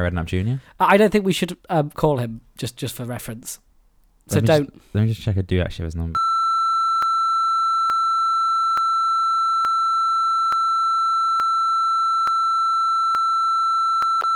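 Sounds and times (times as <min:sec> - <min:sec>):
speech: 0:00.0 - 0:03.6, 0:04.3 - 0:06.3
long steady mid-pitched electronic censor beep tone: 0:06.2 - 0:14.3.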